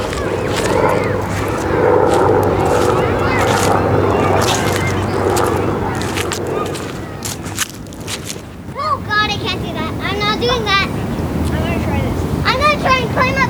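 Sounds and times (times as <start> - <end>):
rustling footsteps on fallen leaves: 0.0 - 8.6
plane engine rumble circling overhead: 0.0 - 13.0
faint voices of children playing on rides: 0.0 - 13.4.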